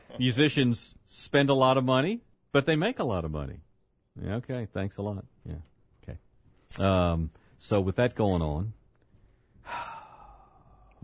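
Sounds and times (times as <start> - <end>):
speech: 0.1 - 8.8, 9.6 - 9.9
cleansing breath, long sighing exhale: 9.6 - 10.8.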